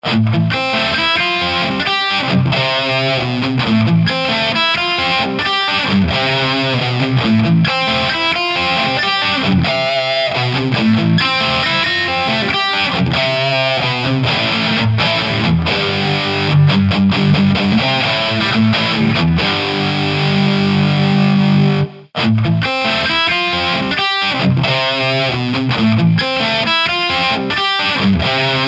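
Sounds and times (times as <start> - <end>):
high-gain electric guitar with humbucker pickup: 0.0 - 28.6.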